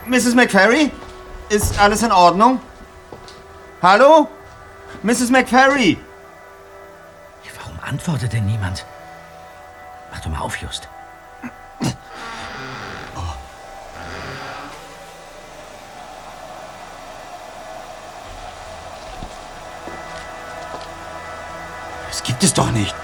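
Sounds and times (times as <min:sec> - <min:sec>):
speech: 0:00.1 - 0:02.7, 0:03.8 - 0:06.0, 0:07.8 - 0:08.9, 0:10.1 - 0:12.0, 0:22.4 - 0:23.0
hair dryer running: 0:13.8 - 0:21.6.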